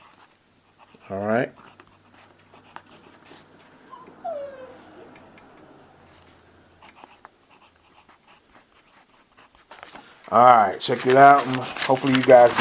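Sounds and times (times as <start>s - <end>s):
pencil scratching across paper: 0.0s - 3.7s, 6.8s - 9.8s
speech: 1.1s - 1.6s, 10.3s - 12.5s
faint dog whimper: 2.5s - 5.4s.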